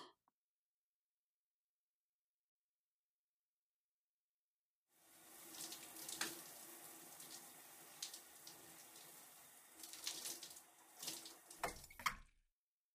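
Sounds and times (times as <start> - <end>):
shower water running: 5.0 - 12.2.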